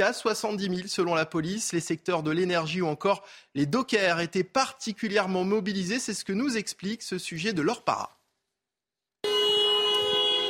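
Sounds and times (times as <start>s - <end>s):
speech: 0.0s - 8.2s
truck horn blaring at a protest march: 9.2s - 10.4s.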